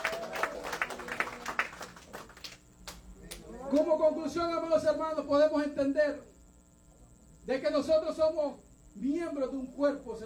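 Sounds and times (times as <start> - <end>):
audience clapping in a steady rhythmic beat: 0.0 - 3.4
speech: 3.7 - 6.3, 7.4 - 10.2.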